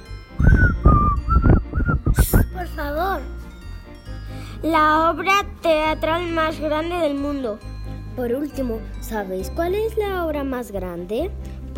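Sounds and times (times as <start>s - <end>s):
person whistling a short lilting run of notes: 0.4s - 2.6s
speech: 4.6s - 11.7s.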